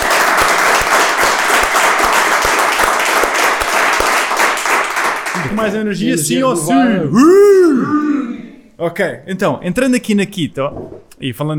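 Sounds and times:
crowd applauding: 0.0s - 6.5s
speech: 5.6s - 8.2s, 8.8s - 11.5s.

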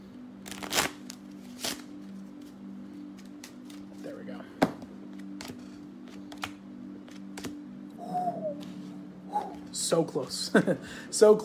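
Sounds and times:
tarot cards being shuffled: 0.4s - 4.0s, 5.1s - 7.6s
speech: 9.8s - 11.4s.

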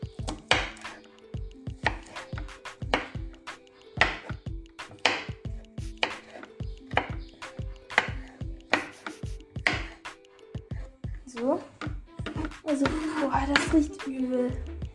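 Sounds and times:
kitchen knife chopping a garlic clove on a board: 0.2s - 1.0s, 1.7s - 3.4s, 4.0s - 10.1s, 11.8s - 13.7s
speech: 13.4s - 14.7s.

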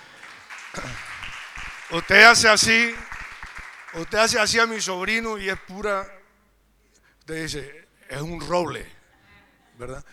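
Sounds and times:
crowd applauding: 0.0s - 4.9s
speech: 1.9s - 3.1s, 3.9s - 6.2s, 7.3s - 9.0s, 9.8s - 10.1s.

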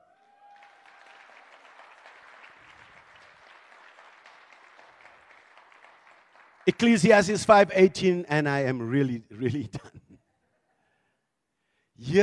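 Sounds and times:
large group applauding: 0.0s - 7.8s
speech: 6.6s - 9.9s.

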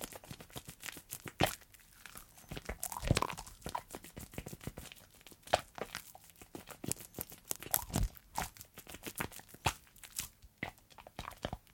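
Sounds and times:
hands rubbing through soapy foam while hand washing: 0.0s - 10.4s
squishing and popping soap bubbles: 2.7s - 3.8s.

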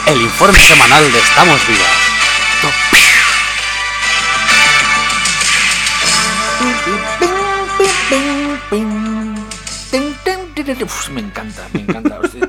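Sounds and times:
speech: 0.1s - 2.1s, 10.7s - 12.4s
short punchy radio section theme jingle with bright melody over bouncing bassline: 0.3s - 8.3s
sharp whip crack in a radio theme jingle: 2.9s - 3.5s.

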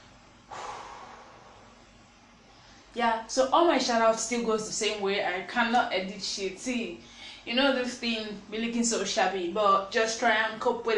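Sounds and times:
sharp breathy exhale from someone catching their breath: 0.5s - 1.8s
speech: 3.0s - 10.9s.

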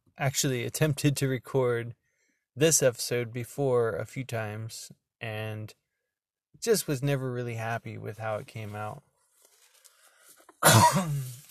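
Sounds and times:
speech: 0.2s - 2.0s, 2.6s - 5.8s, 6.6s - 9.1s, 10.6s - 11.4s
loud harsh cough: 10.6s - 11.3s.

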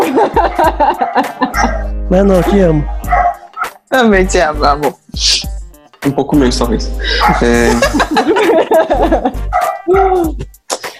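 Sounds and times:
laughter: 0.0s - 1.9s, 7.0s - 10.5s
speech: 0.2s - 1.2s, 2.1s - 3.0s, 3.9s - 10.6s
dog barking and yipping: 0.4s - 3.8s, 7.2s - 7.6s, 9.5s - 10.0s.

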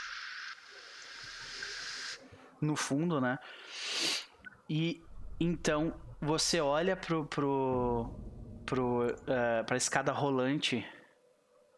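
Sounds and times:
loud steady hiss of radio static: 0.0s - 2.3s
speech: 2.6s - 3.8s, 4.7s - 11.0s
faint low rumbles: 4.4s - 11.7s.

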